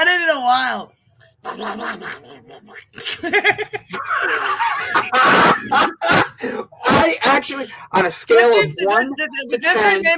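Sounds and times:
speech: 0.4s - 10.1s
voice doing duck-like cartoon impression: 1.3s - 3.2s
laughter: 1.4s - 7.1s.

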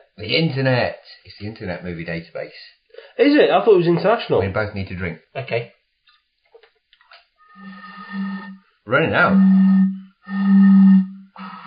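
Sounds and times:
speech: 0.2s - 5.8s, 8.9s - 9.7s
voice imitating a steam train: 9.2s - 11.6s.

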